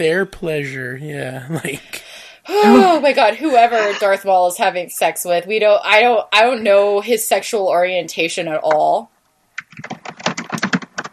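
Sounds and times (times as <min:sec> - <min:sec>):
speech: 0:00.0 - 0:09.1, 0:09.8 - 0:10.0
laughter: 0:02.6 - 0:04.3
rapid furious typing on a computer keyboard: 0:09.6 - 0:11.1.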